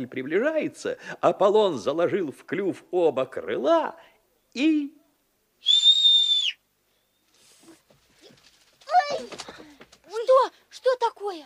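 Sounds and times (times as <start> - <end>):
speech: 0.0 - 5.0, 10.3 - 11.4
loud piercing whistle: 5.6 - 6.6.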